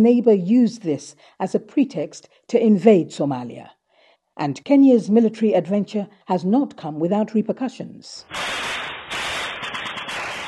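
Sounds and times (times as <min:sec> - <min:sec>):
speech: 0:00.0 - 0:03.8, 0:04.4 - 0:08.7
loud gunfire opening a militant song: 0:08.3 - 0:10.4.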